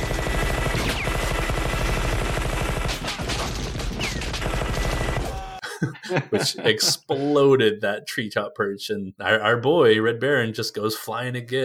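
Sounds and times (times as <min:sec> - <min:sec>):
minigun firing a long burst: 0:00.0 - 0:05.6
laughter: 0:05.2 - 0:07.3
speech: 0:05.8 - 0:11.6.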